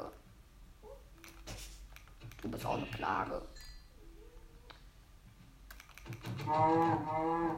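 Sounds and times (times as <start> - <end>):
speech: 2.4 - 3.6, 6.1 - 7.5
cow mooing: 6.5 - 7.5.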